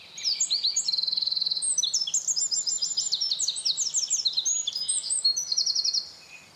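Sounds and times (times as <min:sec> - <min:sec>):
Eurasian wren singing trilling song: 0:00.0 - 0:06.5.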